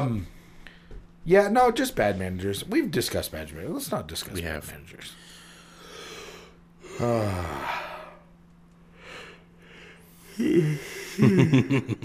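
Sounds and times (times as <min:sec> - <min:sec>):
speech: 0:00.0 - 0:00.4, 0:01.2 - 0:05.3, 0:07.0 - 0:07.8, 0:10.4 - 0:12.0
two people yawning with shaky breaths: 0:06.8 - 0:08.3, 0:10.2 - 0:11.2
laughter: 0:10.4 - 0:12.0.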